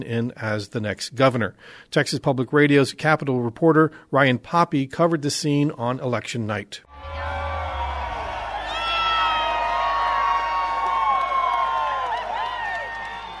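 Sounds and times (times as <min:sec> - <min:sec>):
speech: 0:00.0 - 0:07.4
large election night crowd screaming and cheering in Austin Texas: 0:06.9 - 0:13.3
scattered clapping: 0:08.4 - 0:13.3.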